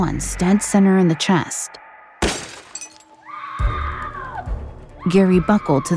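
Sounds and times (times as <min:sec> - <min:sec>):
speech: 0:00.0 - 0:02.4, 0:05.1 - 0:05.9
car window glass shattering with scattering debris: 0:02.2 - 0:03.2.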